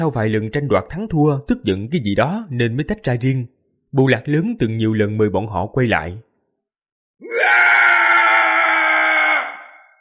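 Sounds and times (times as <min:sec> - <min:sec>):
speech: 0:00.0 - 0:06.3
long scream echoing across mountains: 0:07.2 - 0:09.9.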